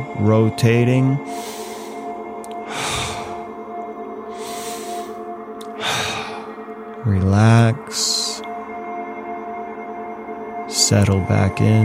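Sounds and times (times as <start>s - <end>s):
faint steady hum: 0.0s - 11.8s
speech: 0.2s - 1.5s, 7.0s - 8.1s, 10.9s - 11.8s
slow breathing during a twisting meditation exercise: 1.2s - 3.6s, 4.3s - 6.6s.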